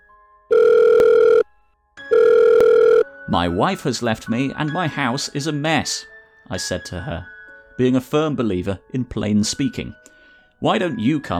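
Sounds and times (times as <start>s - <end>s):
faint telephone dial tone: 0.5s - 1.5s, 2.1s - 3.1s
loud steady electronic telephone ringing: 0.5s - 3.1s
speech: 3.3s - 11.3s.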